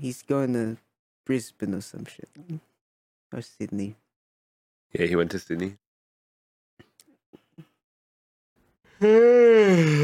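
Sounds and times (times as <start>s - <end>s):
speech: 0.0s - 2.7s, 3.3s - 4.0s, 4.9s - 5.8s, 9.0s - 10.0s
long loud voiced yawn: 8.9s - 10.0s.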